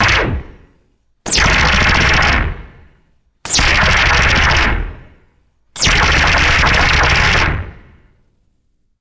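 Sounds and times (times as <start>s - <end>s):
rapid retro sci-fi laser bursts: 0.0s - 0.6s, 1.3s - 2.6s, 3.5s - 5.0s, 5.8s - 7.8s.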